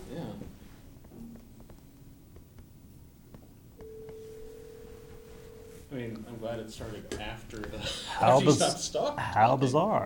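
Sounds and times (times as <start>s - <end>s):
room phone ringing through speakers: 3.8s - 6.0s
speech: 5.9s - 10.0s.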